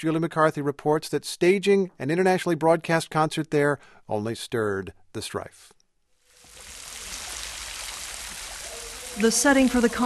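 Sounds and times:
speech: 0.0 - 5.8, 9.2 - 10.0
water splashing from rows of outdoor fountains: 6.3 - 10.0.

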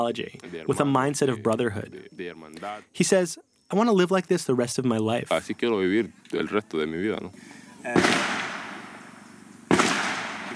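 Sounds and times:
speech: 0.0 - 8.5
gunshots: 7.9 - 10.5.

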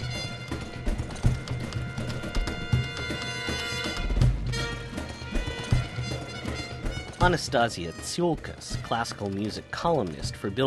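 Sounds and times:
stamping heel strikes of a flamenco dance: 0.0 - 7.3
galloping horse hoofbeats electronically transformed: 0.0 - 10.6
speech: 7.2 - 10.6.

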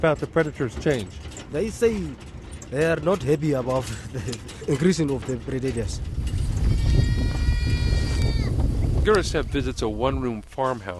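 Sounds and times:
speech: 0.0 - 6.9, 9.0 - 10.9
low rumble of movement and noise: 0.0 - 10.7
goats bleating on a farm behind a wire fence: 6.6 - 8.6.

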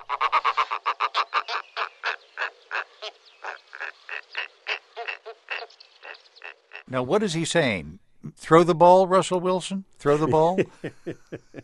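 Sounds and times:
snowy owl giving harsh barking cackles: 0.0 - 6.9
speech: 6.9 - 11.6.

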